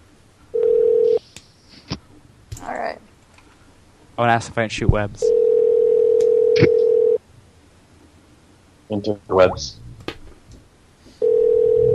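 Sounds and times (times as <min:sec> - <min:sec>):
telephone dial tone: 0:00.6 - 0:01.2, 0:05.3 - 0:07.2, 0:11.2 - 0:11.9
speech: 0:04.2 - 0:05.4, 0:06.6 - 0:06.8, 0:08.9 - 0:09.8.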